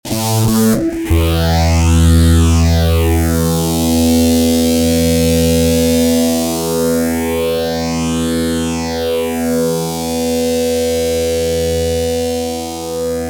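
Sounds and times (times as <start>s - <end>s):
fuzz guitar with master phaser: 0.0s - 13.2s.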